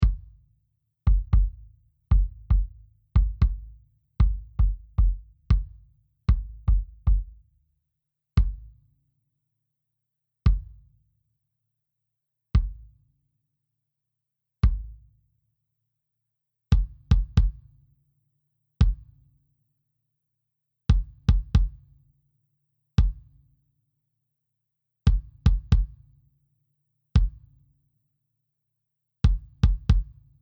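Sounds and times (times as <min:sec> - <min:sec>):
wet kick drum: 0:00.0 - 0:00.4, 0:01.1 - 0:07.5, 0:08.4 - 0:08.8, 0:10.5 - 0:10.9, 0:12.6 - 0:12.9, 0:14.6 - 0:15.0, 0:16.7 - 0:17.7, 0:18.8 - 0:19.2, 0:20.9 - 0:21.8, 0:23.0 - 0:23.3, 0:25.1 - 0:26.1, 0:27.2 - 0:27.4, 0:29.2 - 0:30.4.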